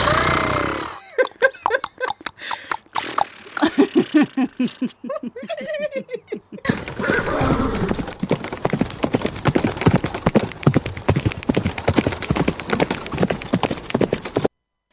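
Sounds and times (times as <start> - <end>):
horse hooves galloping: 1.2 - 3.8, 6.6 - 14.9
laughter: 3.6 - 8.1.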